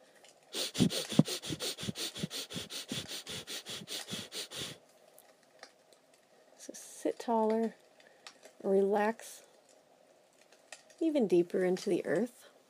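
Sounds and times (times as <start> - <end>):
short quick breaths in and out during a breathing exercise: 0.5 - 4.8
speech: 0.8 - 1.2, 7.3 - 7.8, 8.6 - 9.4, 11.0 - 12.4.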